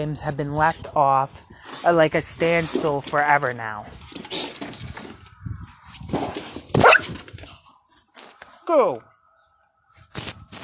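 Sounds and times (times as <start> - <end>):
speech: 0.0 - 4.0, 8.7 - 9.1
dog barking and yelping: 6.8 - 7.1.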